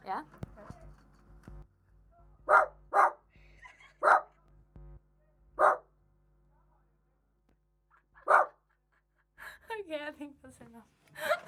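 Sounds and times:
speech: 0.1 - 0.4, 10.2 - 11.3
person barking like a dog: 2.5 - 3.2, 4.0 - 4.3, 5.6 - 5.8, 8.2 - 8.6.

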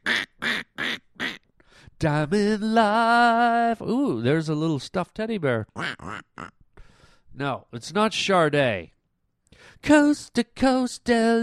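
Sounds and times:
speech: 2.0 - 6.6, 7.4 - 9.0, 9.6 - 11.4
person imitating duck quacks: 5.8 - 6.6.

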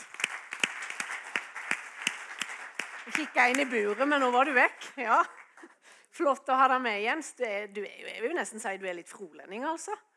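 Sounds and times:
audience applause: 0.0 - 4.6
sharper claps standing out over the crowd: 0.0 - 5.7
speech: 3.1 - 5.4, 6.2 - 10.1.

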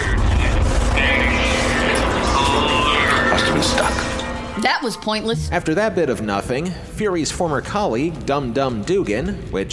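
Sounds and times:
elevator machinery grinding and whirring: 0.2 - 5.8
speech: 4.9 - 9.7.

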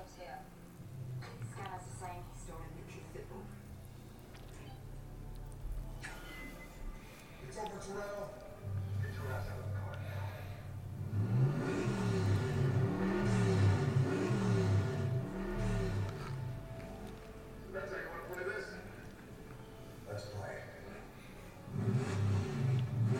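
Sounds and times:
people talking: 0.0 - 0.5, 1.2 - 3.6, 7.5 - 10.4, 17.7 - 19.0
red Corvette Stingray engine revving: 8.7 - 17.6, 21.6 - 23.1.

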